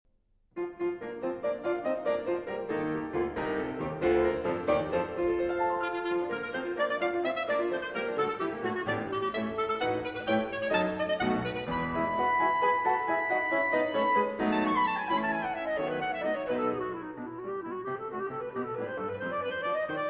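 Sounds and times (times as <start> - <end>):
clarinet: 0.8 - 20.0.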